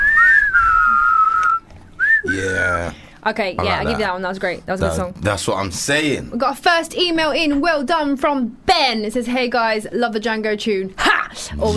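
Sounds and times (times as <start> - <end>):
person whistling a sustained tone: 0.0 - 2.4
speech: 2.4 - 11.7.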